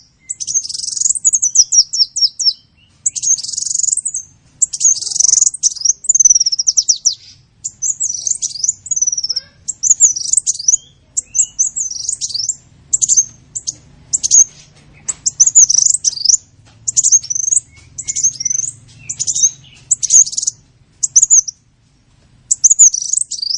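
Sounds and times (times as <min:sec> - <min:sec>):
sunbird singing in full song: 0:00.0 - 0:21.7, 0:22.4 - 0:23.5.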